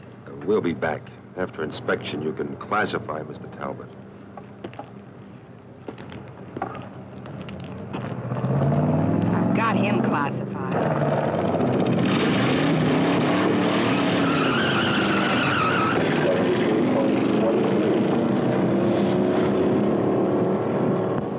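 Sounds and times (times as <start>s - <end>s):
speech: 0.5s - 4.0s
car engine roaring as vehicle drives by: 8.0s - 21.3s
tires squealing on pavement: 11.8s - 20.2s.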